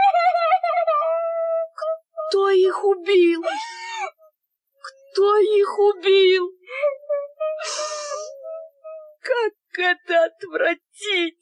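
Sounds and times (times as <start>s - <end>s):
child crying: 0.0s - 2.4s, 3.4s - 4.2s, 6.7s - 9.2s
speech: 2.3s - 3.8s, 5.2s - 6.6s, 9.8s - 11.3s.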